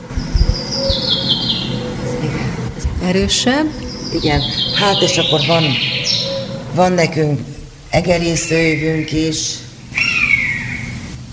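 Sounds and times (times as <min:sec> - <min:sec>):
dull thumps: 0:00.0 - 0:01.1
low rumbling handling noise: 0:00.0 - 0:10.0
common chaffinch singing: 0:00.0 - 0:11.0
speech: 0:03.1 - 0:06.2, 0:06.8 - 0:09.6.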